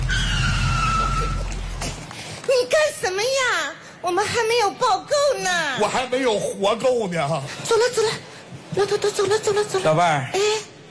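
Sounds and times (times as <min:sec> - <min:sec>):
car tires screeching as the car brakes hard and skids: 0:00.0 - 0:01.8
speech: 0:03.0 - 0:10.7.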